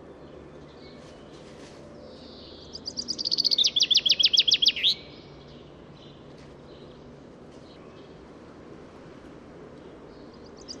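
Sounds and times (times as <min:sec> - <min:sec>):
common chaffinch Fringilla coelebs singing: 0:00.3 - 0:07.0, 0:09.9 - 0:10.7.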